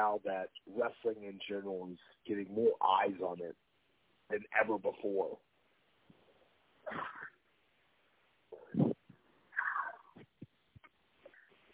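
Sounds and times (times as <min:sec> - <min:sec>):
speech: 0:00.0 - 0:03.7, 0:04.3 - 0:05.5, 0:06.9 - 0:07.3
person sneezing: 0:06.9 - 0:07.3.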